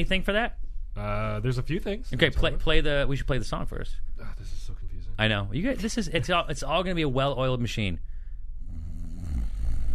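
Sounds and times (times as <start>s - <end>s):
speech: 0.0s - 8.1s
snoring sound effect: 8.6s - 9.9s.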